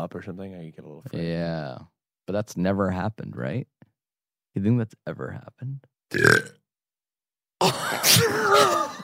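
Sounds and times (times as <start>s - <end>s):
speech: 0.0s - 3.8s, 4.6s - 6.6s, 7.6s - 8.8s
loud deep burp: 6.1s - 6.6s.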